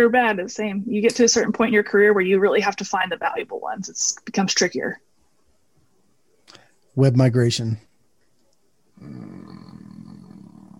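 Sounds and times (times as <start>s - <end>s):
speech: 0.0s - 5.1s, 7.0s - 7.9s
person imitating a lion's roar: 9.0s - 10.7s.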